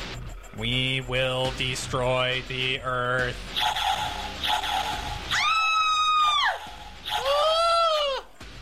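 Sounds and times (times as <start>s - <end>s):
speech: 0.6s - 3.8s
loud drawn-out screams from a movie: 4.5s - 8.4s.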